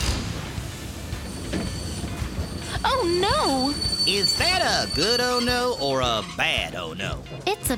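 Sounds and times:
steady loud rumble of a moving train: 0.0s - 7.7s
train wheels squealing as the brakes are pulled on a moving train: 1.0s - 6.9s
speech: 3.0s - 7.7s.

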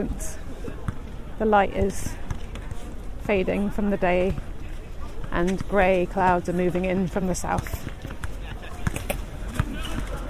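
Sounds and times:
speech: 0.0s - 0.4s, 1.4s - 2.2s, 3.2s - 4.5s, 5.3s - 7.9s
steady outdoor noise: 0.0s - 10.2s
basketball bouncing on pavement: 1.8s - 2.8s, 4.1s - 4.5s, 5.2s - 10.2s.

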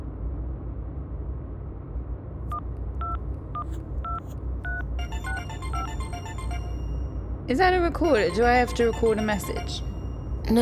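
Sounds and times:
low steady rumble: 0.0s - 10.6s
telephone dialing tones: 4.1s - 7.0s, 8.3s - 10.2s
rapid warbling telephone hailing signal: 4.9s - 10.6s
speech: 7.5s - 9.9s.

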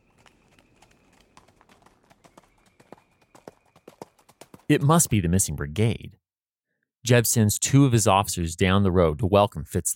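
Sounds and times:
horses' hooves clip-clopping: 0.0s - 5.2s
speech: 4.7s - 6.2s, 7.0s - 9.9s.

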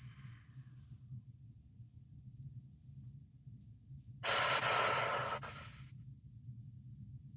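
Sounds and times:
low steady hum: 0.0s - 7.3s
slow breath in through the nose and out through the mouth: 4.2s - 6.0s.

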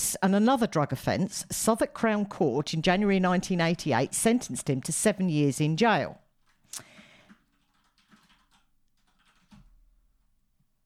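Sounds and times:
speech: 0.1s - 6.9s
typing on a computer keyboard: 6.9s - 10.3s.

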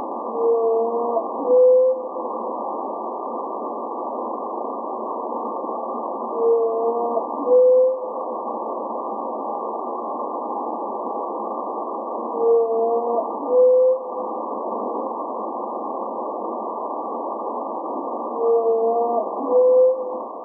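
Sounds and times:
whale song sped up twenty times from underwater microphones in the ocean: 0.2s - 2.3s, 6.2s - 8.2s, 12.2s - 14.3s, 18.3s - 20.4s.

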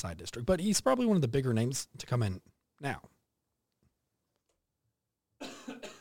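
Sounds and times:
speech: 0.0s - 3.1s
single loud harsh cough: 5.4s - 5.9s.

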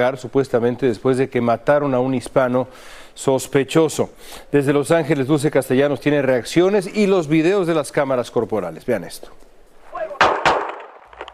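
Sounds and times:
speech: 0.0s - 9.5s
gunshots fired by police officers recorded on body cameras: 10.2s - 11.1s.

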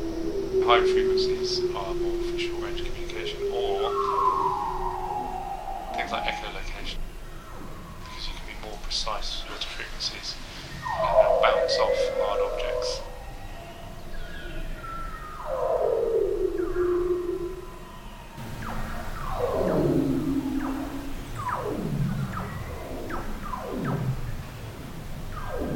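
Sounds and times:
seal whistles recorded underwater in Antarctica in winter: 0.0s - 6.9s, 10.8s - 13.5s, 14.7s - 24.3s
speech: 0.7s - 2.5s, 9.0s - 12.5s.

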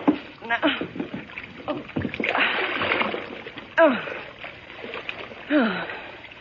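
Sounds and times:
water sloshing and thrashing in a tub: 0.0s - 6.4s
person falling into a low tub of water with a heavy splash: 2.0s - 3.5s.

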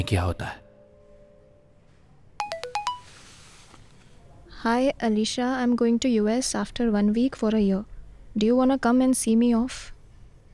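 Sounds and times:
speech: 0.0s - 0.6s, 4.6s - 9.9s
phone text message alert chimes: 2.4s - 3.3s.

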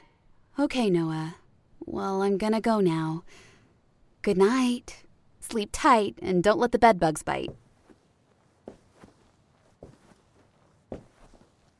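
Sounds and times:
speech: 0.6s - 3.5s, 4.2s - 7.6s
slow footsteps on a hard floor: 7.5s - 11.7s.

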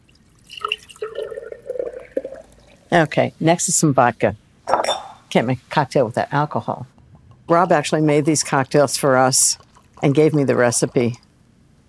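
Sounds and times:
watermelon juice pouring into a pitcher: 0.0s - 2.9s
speech: 2.9s - 4.4s, 5.3s - 11.2s.

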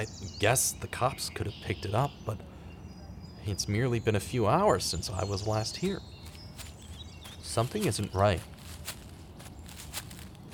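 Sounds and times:
speech: 0.0s - 2.6s, 3.4s - 6.2s, 7.6s - 8.5s
soft footsteps at a walking pace: 5.7s - 10.5s.

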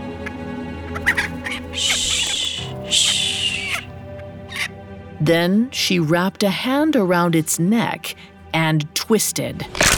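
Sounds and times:
chicken held in someone's arms clucking and squawking: 0.9s - 3.9s, 4.5s - 4.8s
speech: 1.8s - 2.1s, 5.2s - 9.8s.

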